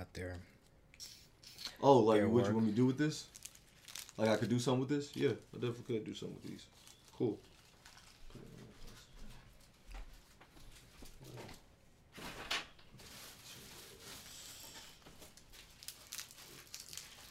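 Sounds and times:
speech: 0:00.2 - 0:01.1, 0:01.8 - 0:03.4, 0:04.2 - 0:07.5
wax paper crinkling while being handled: 0:02.8 - 0:11.2, 0:13.0 - 0:17.2.

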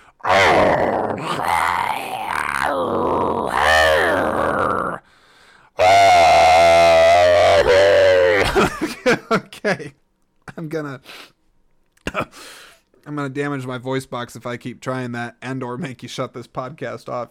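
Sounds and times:
man imitating a scary animal growl: 0:00.0 - 0:05.1, 0:05.8 - 0:08.6
speech: 0:10.7 - 0:11.3, 0:13.2 - 0:17.3.

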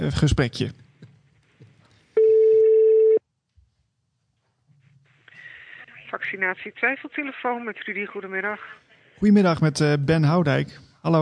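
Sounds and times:
speech: 0:00.0 - 0:00.8, 0:06.1 - 0:11.2
telephone ringing tone before call connects: 0:02.2 - 0:03.2.

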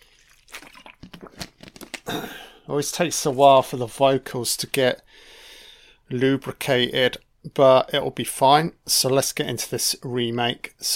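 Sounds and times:
sipping water with soft wet gulps: 0:00.0 - 0:02.7
speech: 0:02.1 - 0:05.1, 0:06.1 - 0:10.9.

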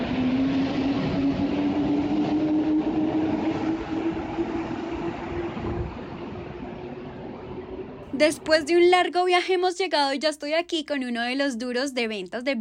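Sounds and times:
metro train ride in Santiago, Chile, low rolling rumble: 0:00.0 - 0:09.6
speech: 0:08.2 - 0:12.6.

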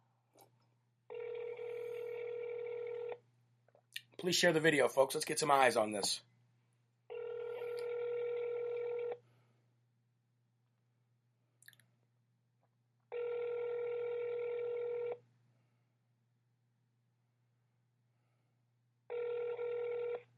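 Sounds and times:
telephone ringback tones: 0:01.1 - 0:03.2, 0:07.1 - 0:09.2, 0:13.1 - 0:15.2, 0:19.1 - 0:20.2
speech: 0:04.2 - 0:06.3.

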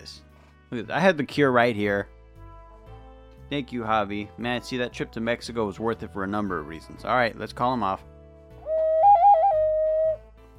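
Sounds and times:
speech: 0:00.1 - 0:02.2, 0:03.5 - 0:08.1
skull-shaped clay whistle being blown: 0:08.6 - 0:10.2.

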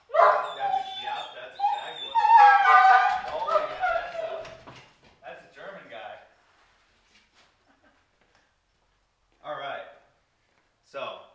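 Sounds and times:
dogs whimpering and yipping: 0:00.0 - 0:04.8.

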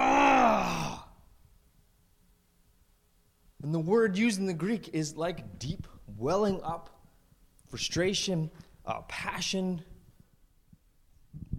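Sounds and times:
preacher voicing a deep guttural groan: 0:00.0 - 0:01.2
speech: 0:03.8 - 0:07.0, 0:07.7 - 0:09.9.

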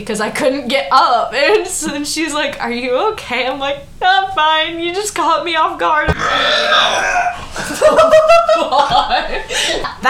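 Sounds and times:
speech: 0:00.0 - 0:10.0
loud drawn-out burp: 0:06.1 - 0:07.5
burst of laughter: 0:07.3 - 0:09.9.

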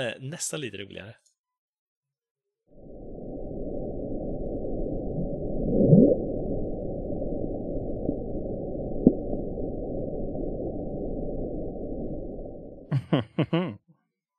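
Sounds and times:
speech: 0:00.0 - 0:01.3, 0:13.1 - 0:13.8
underwater ocean rumble: 0:02.7 - 0:12.9
laughter: 0:12.9 - 0:13.8.

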